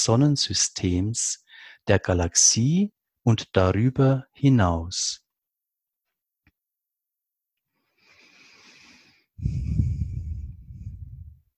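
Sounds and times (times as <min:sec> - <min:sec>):
speech: 0:00.0 - 0:05.2, 0:09.4 - 0:09.9
deep breathing in and out: 0:07.8 - 0:11.4.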